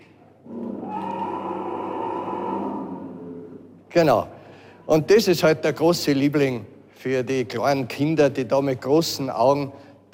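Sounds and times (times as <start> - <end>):
deep mechanical roar from a moving Allosaurus dinosaur figure: 0.4 - 3.7
speech: 3.9 - 10.1.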